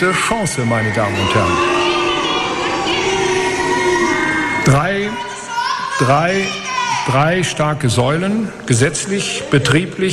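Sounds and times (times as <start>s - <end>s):
speech: 0.0s - 1.8s, 4.7s - 5.3s, 6.0s - 10.1s
large crowd of party delegates booing: 0.0s - 7.2s.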